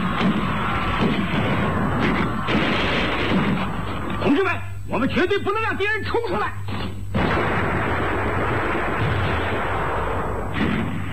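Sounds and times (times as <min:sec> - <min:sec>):
concentrated gunfire in a battle sealing off a bridge: 0:00.0 - 0:04.2, 0:06.7 - 0:11.1
speech: 0:05.0 - 0:06.7.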